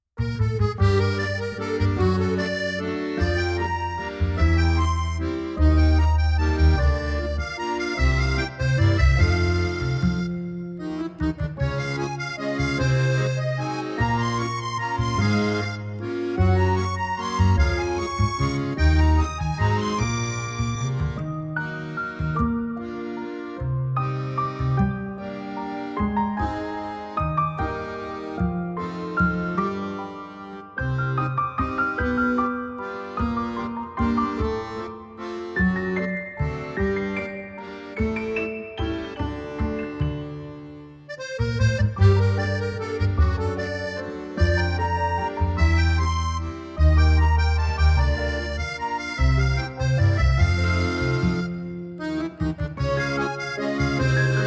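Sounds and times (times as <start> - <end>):
French accordion waltz: 0.0 - 54.4.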